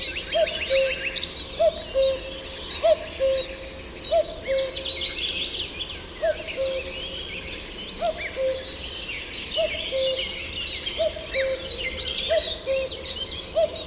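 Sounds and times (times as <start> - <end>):
common cuckoo calling: 0.0 - 5.0, 6.2 - 7.0, 8.0 - 8.8, 9.6 - 10.4, 11.0 - 13.8
chorus of high chirping songbirds: 0.0 - 13.8.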